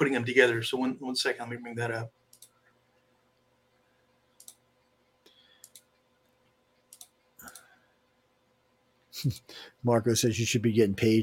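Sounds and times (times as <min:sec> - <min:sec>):
speech: 0:00.0 - 0:02.2, 0:09.2 - 0:11.2
faint steady hum: 0:00.0 - 0:11.2
computer mouse clicks: 0:02.3 - 0:02.6, 0:04.3 - 0:06.1, 0:06.8 - 0:07.8.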